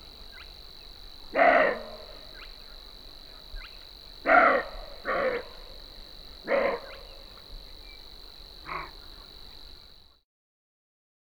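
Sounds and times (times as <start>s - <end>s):
roe deer barking: 1.3s - 2.2s, 4.2s - 5.6s, 6.4s - 7.1s, 8.6s - 9.3s.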